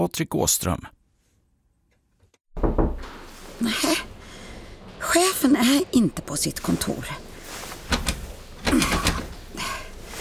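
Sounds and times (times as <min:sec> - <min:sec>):
speech: 0:00.0 - 0:01.0, 0:03.6 - 0:04.1, 0:05.4 - 0:07.2, 0:08.7 - 0:09.1
handle of a locked office door rattling: 0:07.9 - 0:09.5.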